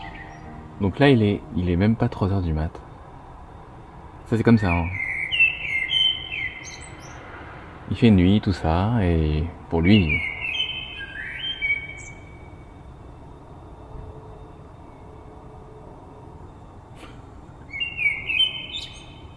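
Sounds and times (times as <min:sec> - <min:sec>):
birds singing before dawn: 0:00.0 - 0:02.5, 0:04.3 - 0:07.4, 0:08.2 - 0:12.8, 0:17.4 - 0:19.3
speech: 0:00.8 - 0:02.9, 0:04.3 - 0:05.0, 0:07.9 - 0:10.3.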